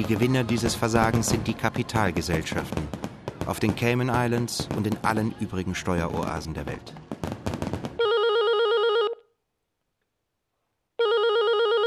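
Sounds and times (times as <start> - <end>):
speech: 0.0 - 7.4
telephone ringing with a buzzing electronic tone: 8.0 - 9.3, 11.0 - 11.8.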